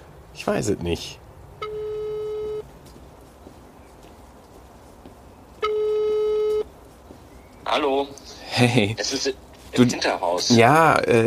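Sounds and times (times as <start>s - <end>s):
faint noise: 0.0s - 11.2s
speech: 0.4s - 1.2s, 7.7s - 11.2s
telephone ringback tone: 1.6s - 2.7s, 5.6s - 6.7s.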